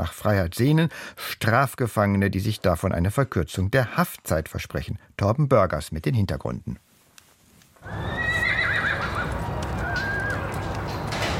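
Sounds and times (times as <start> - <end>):
speech: 0.0 - 6.9, 7.8 - 8.2
black wild mustang neighing: 7.8 - 9.3
mustang hoof clomping: 7.8 - 11.3.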